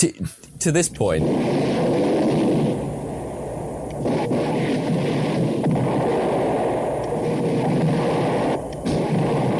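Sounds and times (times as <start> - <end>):
speech: 0.0 - 1.6
movie explosions and artillery fire in an action film: 1.2 - 2.8, 4.0 - 9.5.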